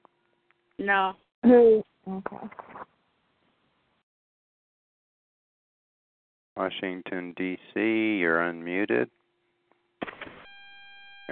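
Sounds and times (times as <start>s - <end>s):
speech: 0.8s - 2.9s, 6.6s - 9.2s
phone antenna interference buzzing and high-pitched whine: 10.0s - 11.3s.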